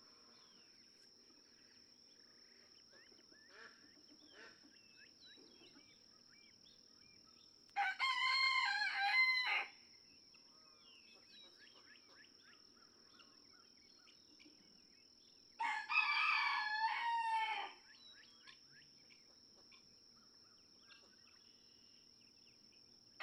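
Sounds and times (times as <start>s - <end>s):
Red junglefowl rooster crowing in a Kentucky barnyard: 7.8s - 9.7s, 15.6s - 17.8s.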